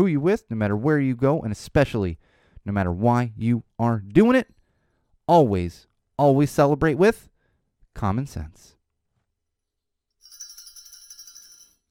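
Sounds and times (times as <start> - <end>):
speech: 0.0 - 4.6, 5.3 - 7.3, 8.0 - 8.8
bells ringing: 10.2 - 11.8.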